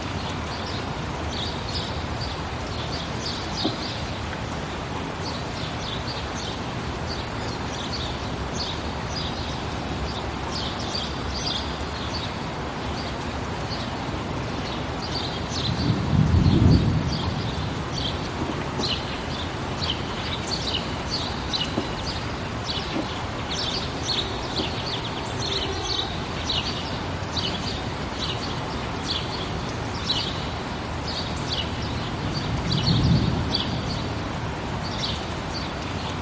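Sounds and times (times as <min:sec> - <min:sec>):
steady dense rain: 0:00.0 - 0:36.2
thunder rolling: 0:15.7 - 0:19.2.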